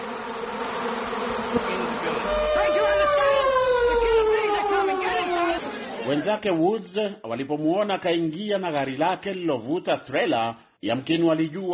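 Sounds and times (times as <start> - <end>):
thousands of bees swarming out of broken-open beehives: 0.0 - 5.7
speech: 6.1 - 11.7.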